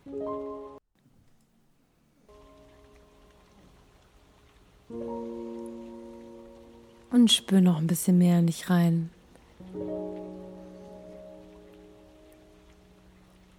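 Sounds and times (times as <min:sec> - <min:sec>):
rain hissing: 0:02.2 - 0:13.5
calm sustained musical tones: 0:02.3 - 0:03.6, 0:04.9 - 0:07.4, 0:09.6 - 0:13.5
speech: 0:07.1 - 0:09.2.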